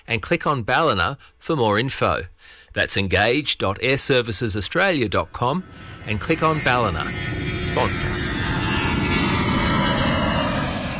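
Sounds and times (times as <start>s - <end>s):
speech: 0.1s - 8.3s
aircraft engine roar passing overhead: 4.6s - 10.9s.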